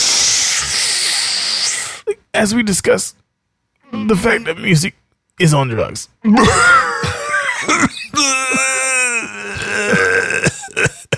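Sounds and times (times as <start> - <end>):
speech: 2.4 - 3.2, 4.0 - 6.9
wet slobbery cough with gurgling sputters: 6.3 - 11.1.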